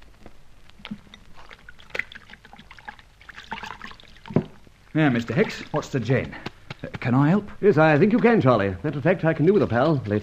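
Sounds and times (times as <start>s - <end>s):
water sloshing and splashing in a basin during washing: 0.8s - 6.4s
speech: 5.0s - 10.2s.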